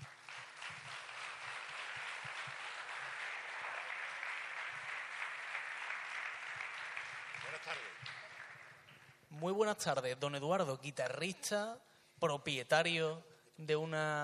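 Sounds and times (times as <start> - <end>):
audience applause: 0.0 - 9.1
speech: 7.6 - 8.2, 9.4 - 14.2.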